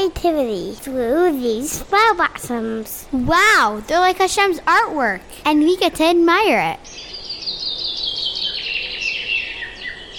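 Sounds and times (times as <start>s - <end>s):
speech: 0.0s - 7.1s
birds singing in a dense chorus: 6.6s - 10.1s.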